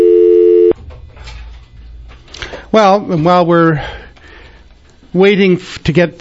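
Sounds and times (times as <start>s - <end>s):
steady telephone tone: 0.0s - 0.8s
speech: 2.8s - 4.0s, 5.1s - 6.1s.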